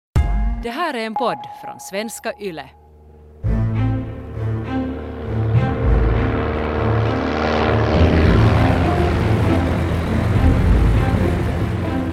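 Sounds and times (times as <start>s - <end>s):
speech: 0.6s - 2.8s
propeller airplane engine droning in flight: 2.8s - 12.1s.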